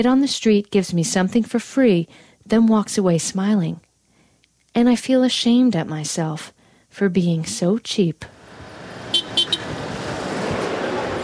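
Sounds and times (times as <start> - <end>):
speech: 0.0 - 3.9, 4.7 - 8.4
traffic and engine rumble: 8.3 - 11.2
car horn beeping: 9.1 - 9.8.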